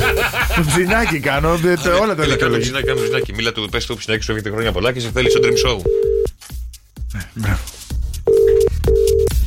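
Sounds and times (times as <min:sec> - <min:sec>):
laughter: 0:00.0 - 0:03.0
speech: 0:00.6 - 0:06.2, 0:07.1 - 0:07.7
telephone line ringing as a call is placed: 0:02.3 - 0:03.3, 0:05.2 - 0:06.3, 0:08.3 - 0:09.3.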